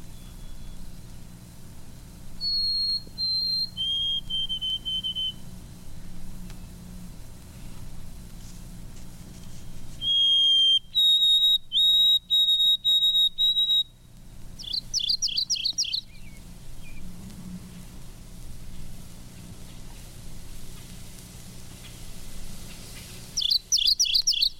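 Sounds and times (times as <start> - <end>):
two white-throated sparrows calling territorially in the woods: 0.0 - 0.9, 2.4 - 5.5, 9.4 - 14.0, 14.6 - 17.1, 22.6 - 24.5
buzzy bird chirps: 0.0 - 1.0, 2.4 - 5.6, 9.3 - 17.2, 21.7 - 24.5
low outdoor hum: 0.0 - 24.5.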